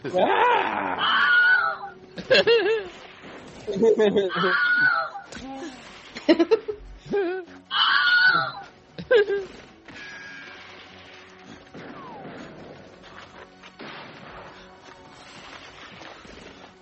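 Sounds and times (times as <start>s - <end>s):
stock scream from TV shows and movies: 0.2s - 1.9s, 4.2s - 5.7s, 7.7s - 8.6s
laughter: 2.2s - 3.0s, 3.6s - 4.9s, 6.2s - 7.6s, 9.0s - 9.7s.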